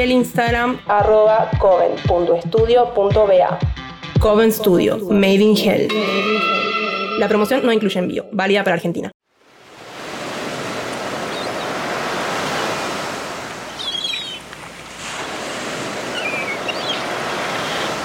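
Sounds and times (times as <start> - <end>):
speech: 0.0 - 9.1
red water washing onto the sandy shore of the Japanese coast: 9.4 - 18.0.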